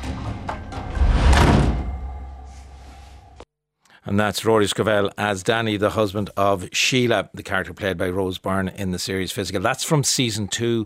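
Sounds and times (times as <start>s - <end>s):
door sliding and swinging shut with a soft heavy thud: 0.8s - 2.0s
speech: 4.1s - 10.8s.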